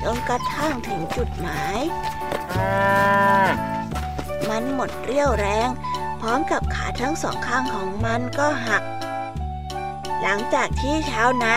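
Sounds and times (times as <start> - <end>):
speech: 0.1 - 3.8, 4.4 - 9.0, 10.2 - 11.5
cow mooing: 2.4 - 3.8.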